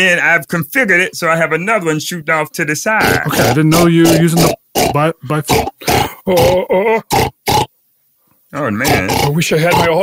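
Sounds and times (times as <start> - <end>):
speech: 0.0 - 7.6, 8.5 - 10.0
live pig grunting while eating: 3.0 - 7.7, 8.8 - 10.0.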